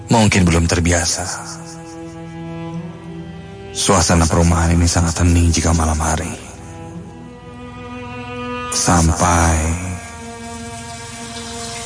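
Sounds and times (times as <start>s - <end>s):
speech: 0.1s - 1.7s, 3.8s - 6.4s, 8.7s - 9.9s
water running from a bathroom tap: 10.1s - 11.8s.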